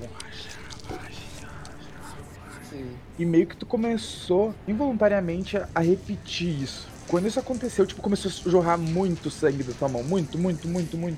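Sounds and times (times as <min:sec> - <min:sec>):
hushed breathy eerie whispering voice: 0:00.0 - 0:03.2
speech: 0:02.7 - 0:11.1.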